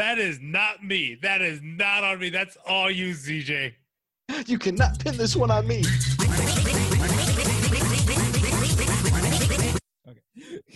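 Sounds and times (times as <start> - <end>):
speech: 0.0 - 6.6
dubstep track built from duck quacks: 4.8 - 9.8.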